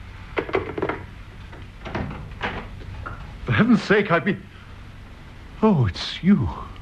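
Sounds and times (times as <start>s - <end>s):
wooden door being opened: 0.4s - 3.2s
speech: 3.6s - 4.5s, 5.6s - 6.7s.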